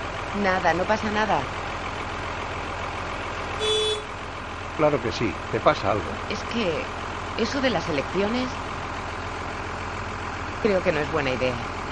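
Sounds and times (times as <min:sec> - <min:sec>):
tractor heavy diesel engine idling: 0:00.0 - 0:11.8
speech: 0:00.4 - 0:01.6, 0:04.8 - 0:08.6, 0:10.6 - 0:11.7.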